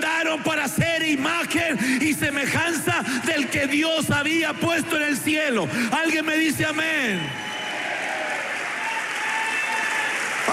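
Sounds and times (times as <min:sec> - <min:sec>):
speech: 0:00.4 - 0:07.5
church congregation clapping along during a worship service: 0:06.7 - 0:10.5.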